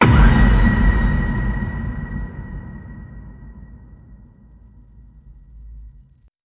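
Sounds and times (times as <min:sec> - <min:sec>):
Halloween impact: 0:00.0 - 0:06.3.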